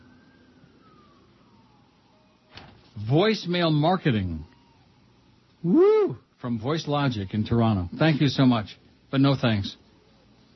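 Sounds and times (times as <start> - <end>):
fire truck siren wailing in a slow falling tone: 0.0 - 6.2
steady low traffic rumble: 0.0 - 10.5
speech: 3.1 - 4.5, 5.6 - 9.8.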